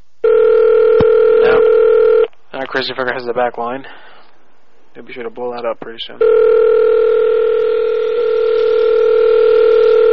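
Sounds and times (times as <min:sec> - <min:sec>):
outgoing call telephone dial tone: 0:00.2 - 0:02.3, 0:06.2 - 0:10.1
speech: 0:02.8 - 0:04.1, 0:05.0 - 0:06.9.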